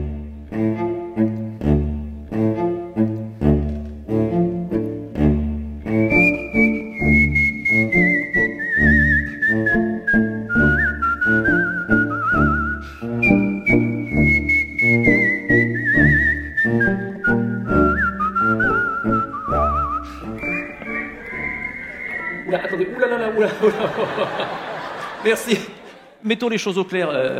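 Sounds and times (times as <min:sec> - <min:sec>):
loud steady instrumental accompaniment: 0:00.0 - 0:24.7
man whistling a clear bright melody during an evening performance: 0:05.9 - 0:23.1
laughter: 0:20.3 - 0:26.2
speech: 0:26.4 - 0:27.3.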